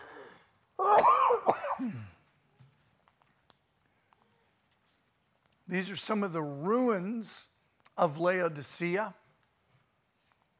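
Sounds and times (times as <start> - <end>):
person coughing: 0.8 - 2.2
speech: 5.7 - 9.2.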